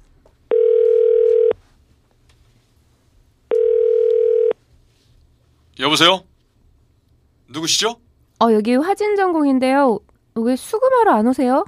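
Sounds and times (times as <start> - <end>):
telephone ringback tone: 0.5 - 1.6, 3.5 - 4.6
speech: 5.8 - 6.3, 7.5 - 11.6.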